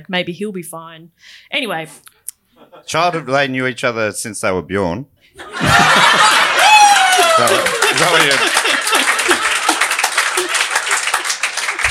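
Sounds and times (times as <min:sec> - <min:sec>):
speech: 0:00.0 - 0:06.4, 0:07.4 - 0:08.5
laughter: 0:02.6 - 0:03.2, 0:05.4 - 0:11.8
excited voices: 0:05.4 - 0:11.8
crowd clapping: 0:05.6 - 0:11.8.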